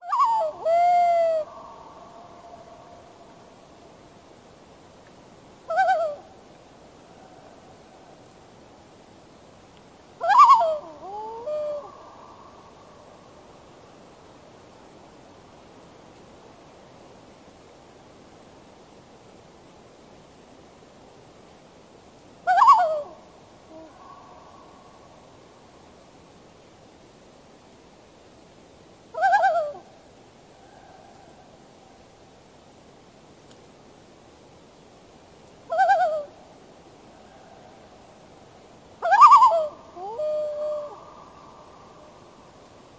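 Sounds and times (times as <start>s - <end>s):
loon calling: 0.0s - 2.9s, 5.7s - 6.3s, 10.2s - 12.5s, 22.5s - 24.4s, 29.2s - 29.9s, 35.7s - 36.4s, 39.0s - 41.8s.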